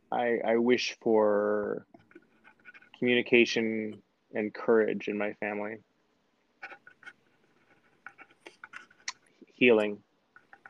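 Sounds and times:
speech: 0.1s - 2.0s, 3.0s - 5.9s, 9.6s - 10.0s
pen writing on paper: 2.0s - 3.0s, 6.6s - 9.1s, 10.4s - 10.6s.

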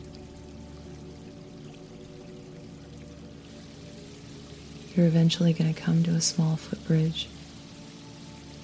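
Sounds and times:
stream water flowing: 0.0s - 8.6s
speech: 5.0s - 7.4s.

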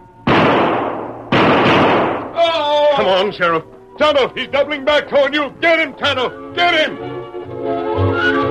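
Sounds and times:
gunshots fired through a jail cell window: 0.3s - 2.4s
speech: 3.0s - 8.4s.

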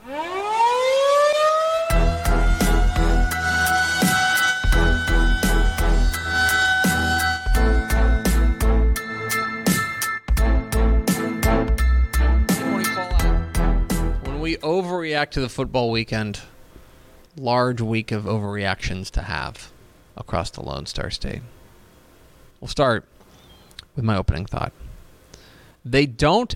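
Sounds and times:
air raid siren wailing: 0.0s - 9.7s
heavy pounding drum beat: 1.9s - 9.0s, 9.7s - 11.8s, 12.5s - 14.5s
speech: 15.2s - 16.5s, 17.4s - 21.6s, 22.6s - 23.1s, 24.0s - 24.8s, 25.8s - 26.5s.

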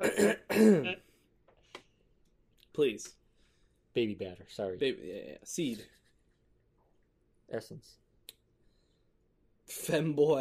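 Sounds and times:
speech: 0.0s - 1.0s, 3.0s - 3.2s, 4.0s - 6.0s, 7.5s - 8.0s, 9.7s - 10.3s
throat clearing with phlegm: 0.0s - 1.1s.

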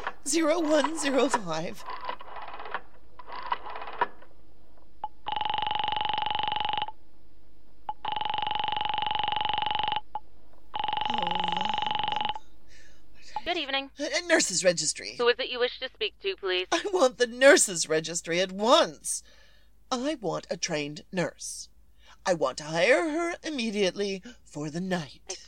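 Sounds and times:
speech: 0.3s - 2.0s, 14.0s - 25.4s
telephone ringing tones: 5.2s - 7.0s, 7.9s - 12.5s.

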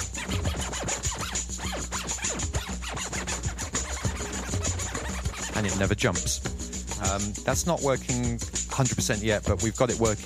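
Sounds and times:
digital DJ scratching of a sampled sound: 0.0s - 6.4s
speech: 5.6s - 10.2s.

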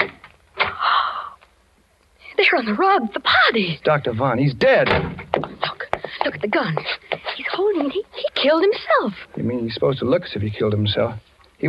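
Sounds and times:
speech: 2.5s - 5.2s, 6.4s - 11.6s
door hinges creaking: 4.7s - 5.4s.

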